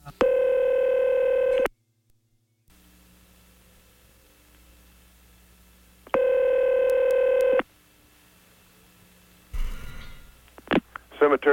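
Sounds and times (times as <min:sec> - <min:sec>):
buzzy electronic telephone line tones: 0:00.2 - 0:01.7, 0:06.1 - 0:07.7
speech: 0:11.3 - 0:11.5.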